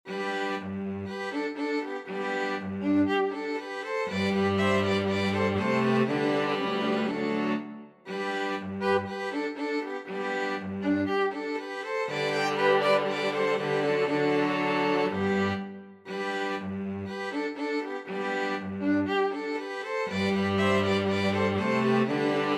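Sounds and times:
string quartet playing: 0.1 - 22.5.

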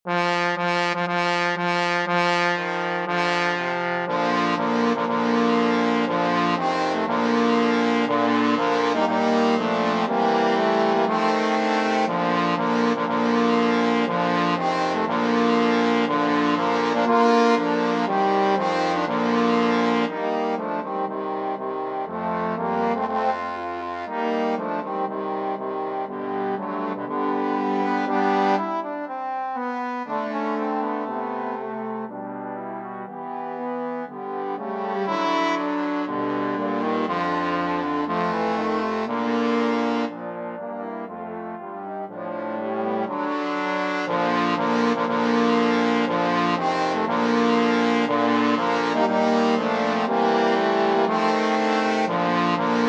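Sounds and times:
trombone quartet playing: 0.1 - 52.8.

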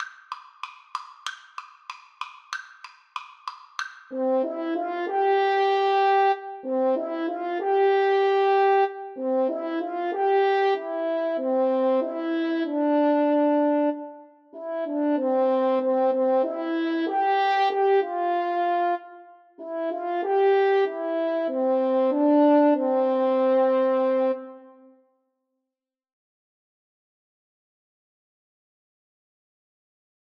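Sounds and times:
French horn duet: 4.1 - 24.9.

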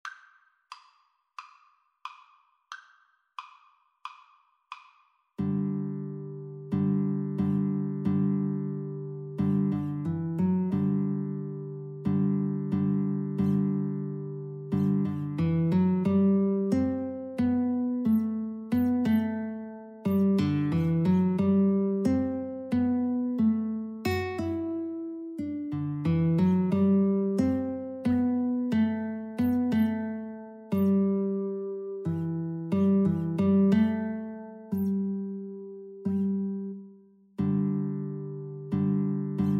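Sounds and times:
guitar duet: 5.4 - 39.5.

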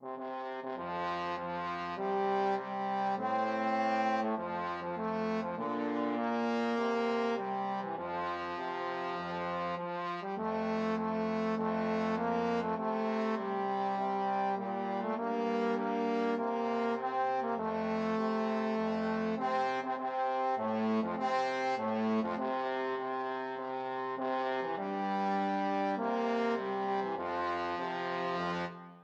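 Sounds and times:
trombone duet: 0.0 - 28.7.

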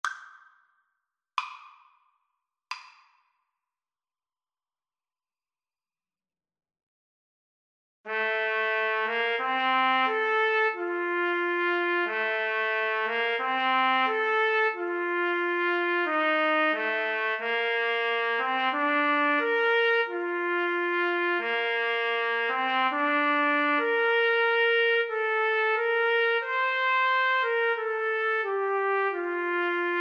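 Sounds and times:
yodel trumpet duet: 8.1 - 29.9.

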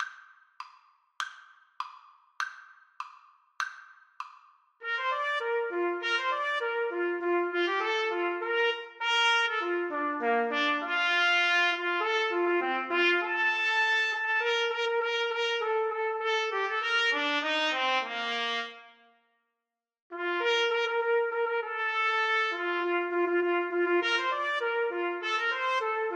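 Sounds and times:
trumpet duet: 4.8 - 19.0, 20.1 - 26.1.

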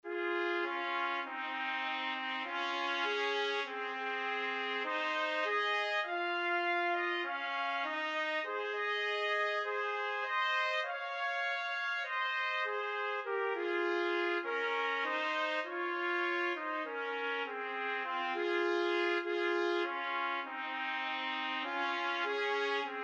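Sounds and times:
trumpet duet of a folk song: 0.1 - 23.0.

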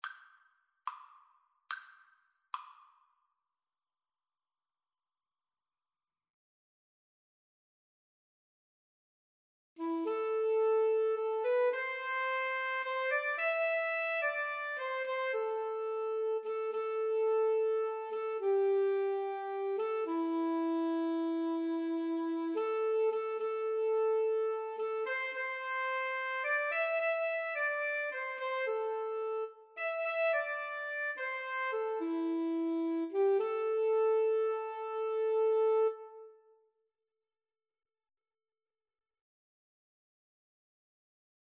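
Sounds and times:
alto saxophone in a duet with guitar: 9.8 - 36.6.

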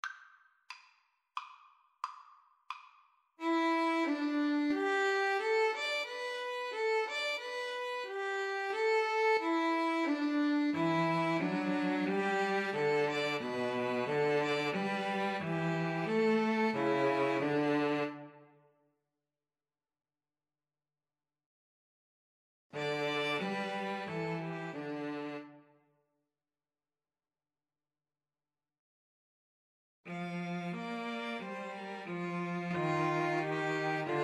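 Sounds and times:
string trio playing: 3.4 - 18.4, 22.8 - 25.6, 30.1 - 34.2.

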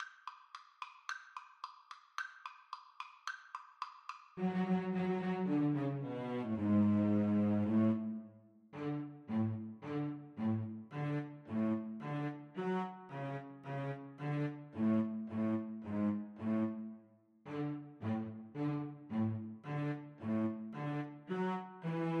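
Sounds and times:
cello duet: 4.4 - 22.1.

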